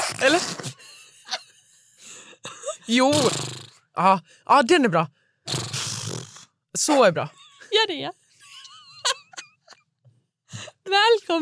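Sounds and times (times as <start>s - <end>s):
speech: 0.1s - 0.8s, 2.9s - 5.6s, 6.8s - 8.2s, 10.9s - 11.4s
voice imitating a horse neigh: 3.0s - 3.8s, 5.5s - 6.5s.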